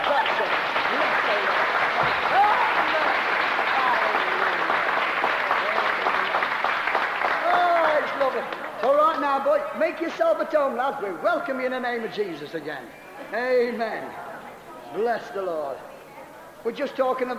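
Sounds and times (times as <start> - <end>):
audience applauding: 0.0 - 9.6
voices cheering and calling out: 0.0 - 9.6
speech: 9.4 - 14.2, 14.9 - 15.9, 16.6 - 17.3.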